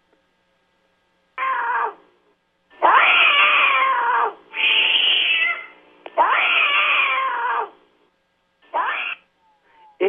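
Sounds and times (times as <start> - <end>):
cat yowling an aggressive warning: 1.4 - 2.0, 2.8 - 7.8, 8.7 - 9.3.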